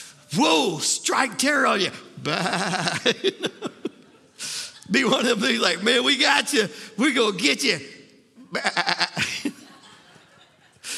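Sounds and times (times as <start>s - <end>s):
speech: 0.3s - 3.8s, 4.9s - 9.0s
laughter: 2.2s - 6.1s, 8.4s - 10.9s
person imitating a sheep bleating: 8.5s - 9.2s.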